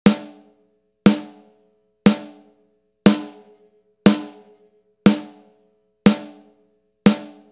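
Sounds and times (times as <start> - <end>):
snare drum: 0.1 - 0.5, 1.1 - 1.5, 2.1 - 2.5, 3.1 - 3.5, 4.1 - 4.5, 5.1 - 5.5, 6.1 - 6.5, 7.1 - 7.5.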